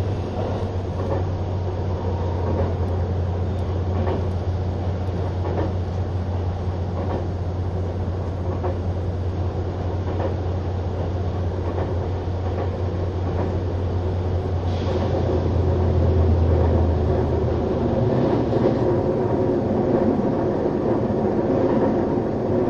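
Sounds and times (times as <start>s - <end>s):
hybrid train engine drone inside green car: 0.0s - 22.6s.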